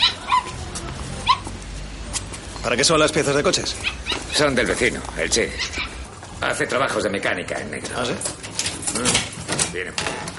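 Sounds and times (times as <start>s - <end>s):
dogs yipping and whimpering: 0.0s - 1.6s, 3.7s - 4.6s, 5.5s - 6.1s
speech: 2.6s - 10.3s.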